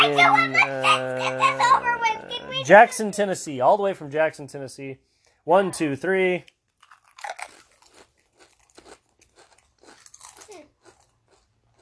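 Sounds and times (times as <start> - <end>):
laughter: 0.0 - 2.7
speech: 2.6 - 6.6
seaweed-flavoured Pringles crisps being bitten and chewed: 6.7 - 11.8.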